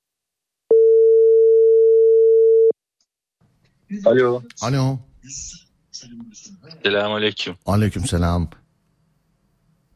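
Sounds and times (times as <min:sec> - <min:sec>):
telephone ringing tone on an outgoing call: 0:00.7 - 0:02.7
speech: 0:03.9 - 0:08.6.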